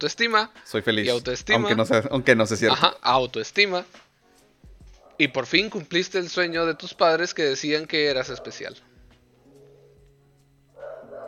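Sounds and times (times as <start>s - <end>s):
speech: 0.0s - 4.1s, 5.2s - 8.9s
dogs barking: 4.9s - 5.4s, 8.1s - 8.8s, 10.8s - 11.2s.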